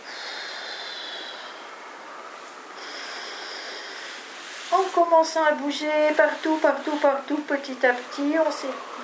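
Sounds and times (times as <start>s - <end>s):
deep forceful breaths during a relaxation exercise: 0.0s - 4.7s
speech: 4.7s - 9.0s.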